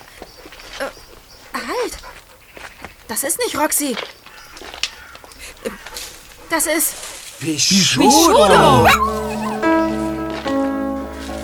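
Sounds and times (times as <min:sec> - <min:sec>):
speech: 0:00.8 - 0:02.1, 0:03.1 - 0:04.2, 0:06.5 - 0:09.2
laughter: 0:07.4 - 0:09.9
injured stray dog whimpering and yelping: 0:08.0 - 0:09.8.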